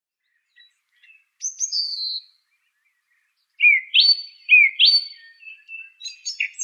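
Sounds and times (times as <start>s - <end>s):
song thrush singing: 0.2s - 6.6s.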